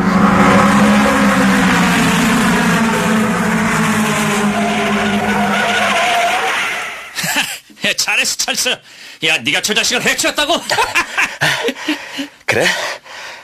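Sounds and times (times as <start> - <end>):
car engine roaring during reckless speed racing: 0.0 - 7.2
car tires squealing during reckless speed racing: 0.0 - 7.2
laughter: 7.1 - 7.8, 10.0 - 12.4
speech: 7.9 - 13.0.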